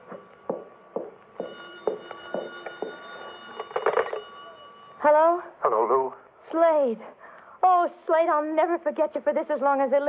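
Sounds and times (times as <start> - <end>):
telephone ringing with a buzzy electric tone: 0.0 - 6.1
speech: 5.0 - 7.2, 7.8 - 10.0.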